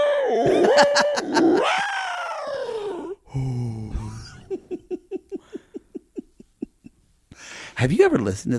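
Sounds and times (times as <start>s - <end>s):
speech: 0.3s - 2.0s, 7.8s - 8.5s
laughter: 0.5s - 1.8s, 3.9s - 6.9s
eerie moaning tones of a sonified black hole recording: 2.4s - 4.6s.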